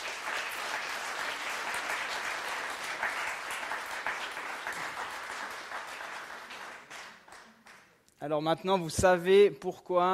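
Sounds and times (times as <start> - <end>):
audience applauding: 0.0 - 8.0
speech: 8.2 - 10.1.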